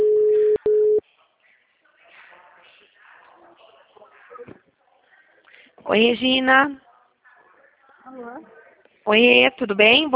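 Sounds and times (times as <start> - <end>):
telephone ringback tone: 0.0 - 1.0
faint voices: 0.4 - 9.6
speech: 5.9 - 6.8, 8.1 - 10.1.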